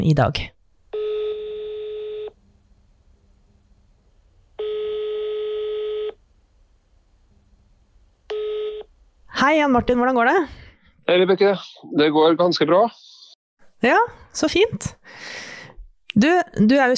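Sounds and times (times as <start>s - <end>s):
speech: 0.0s - 0.6s, 9.5s - 13.1s, 13.8s - 15.5s, 16.2s - 16.9s
buzzy telephone ringback tone: 0.9s - 2.4s, 4.6s - 6.2s, 8.3s - 8.9s.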